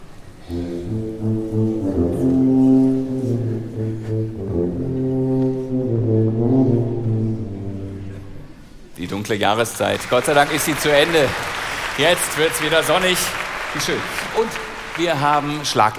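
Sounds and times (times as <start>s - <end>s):
orchestral tuba playing slow deep sustained low notes: 0.4s - 8.8s
speech: 9.3s - 15.9s.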